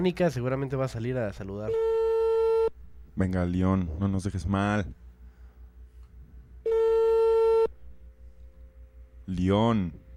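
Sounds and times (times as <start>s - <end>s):
speech: 0.0s - 2.1s, 3.2s - 5.0s, 9.3s - 10.0s
faint low hum: 0.0s - 10.1s
telephone call tone: 6.6s - 7.7s.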